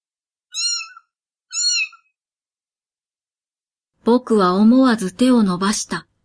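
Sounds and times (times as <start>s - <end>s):
brown tabby kitten meowing high-pitched: 0.5s - 2.1s
speech: 4.0s - 6.1s.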